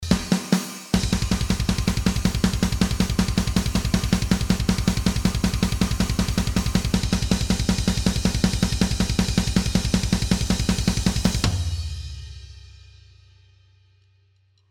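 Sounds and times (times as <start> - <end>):
raw natural snare drum samples: 0.0 - 11.8.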